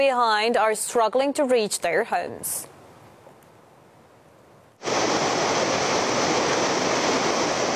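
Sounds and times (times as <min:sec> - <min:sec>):
speech: 0:00.0 - 0:02.7
rushing flood-swollen river water: 0:04.8 - 0:07.7.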